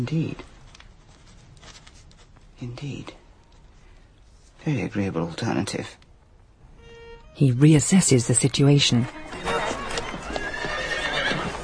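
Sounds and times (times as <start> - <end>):
speech: 0.0 - 0.5, 2.6 - 3.2, 4.6 - 6.0, 7.4 - 9.5
hooves clip-clopping on a busy town high street: 9.0 - 11.6
horses neighing on a busy town high street: 9.4 - 11.6.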